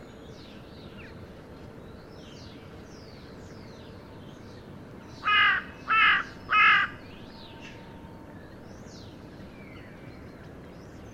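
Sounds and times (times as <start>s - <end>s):
carrion crow Corvus corone rasping caws: 5.2s - 7.0s.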